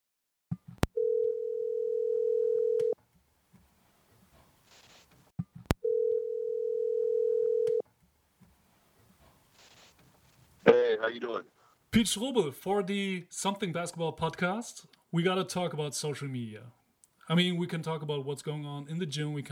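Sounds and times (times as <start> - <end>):
phone ringback tone on a call to a basketball coach: 1.0 - 3.0, 5.8 - 7.8
speech: 11.0 - 19.5.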